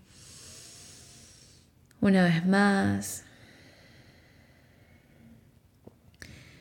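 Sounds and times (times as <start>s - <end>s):
deep breath in and out during a guided breathing exercise: 0.0s - 1.8s, 3.2s - 5.6s, 6.2s - 6.5s
speech: 2.0s - 3.3s.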